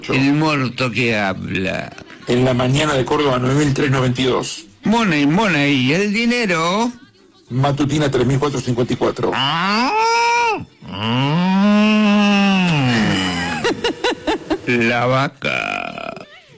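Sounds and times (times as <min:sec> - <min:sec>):
speech: 0:00.0 - 0:09.8, 0:14.7 - 0:15.7
voice imitating a cow mooing: 0:09.3 - 0:13.6, 0:15.4 - 0:16.3
laughter: 0:12.6 - 0:15.0.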